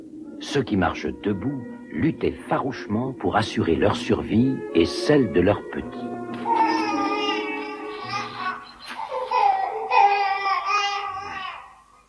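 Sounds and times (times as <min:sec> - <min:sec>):
speech: 0:00.5 - 0:06.6
baby crying in high wavering wails: 0:06.3 - 0:11.9.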